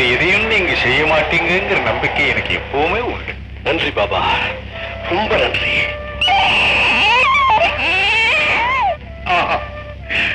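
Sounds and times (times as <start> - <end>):
speech: 0.8 - 6.7
newborn baby crying: 6.2 - 9.6.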